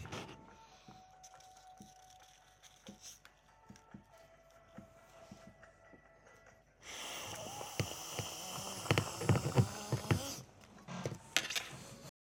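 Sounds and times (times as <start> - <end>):
snort: 6.8 - 10.5.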